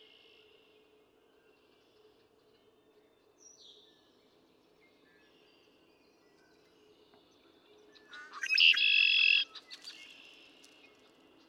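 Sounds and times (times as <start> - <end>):
Red-winged Blackbird song with buzzy trill: 8.1 - 10.0.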